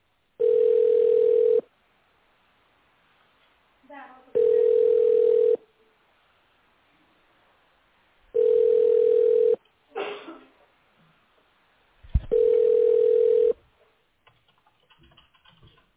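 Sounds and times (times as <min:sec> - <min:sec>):
telephone ringback tone on an unanswered call: 0:00.4 - 0:01.7, 0:04.4 - 0:05.6, 0:08.4 - 0:09.6, 0:12.3 - 0:13.6.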